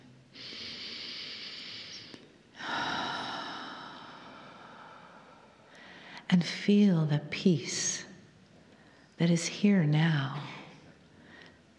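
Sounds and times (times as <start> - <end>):
slow deep breath drawn in during guided breathing: 0.4 - 6.2
speech: 6.3 - 8.1, 9.2 - 10.6.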